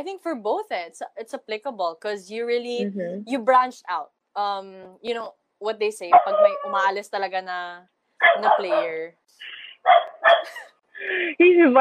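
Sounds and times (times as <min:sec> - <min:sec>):
speech: 0:00.0 - 0:11.7
dog barking: 0:06.1 - 0:06.7, 0:08.2 - 0:09.0, 0:09.8 - 0:10.6.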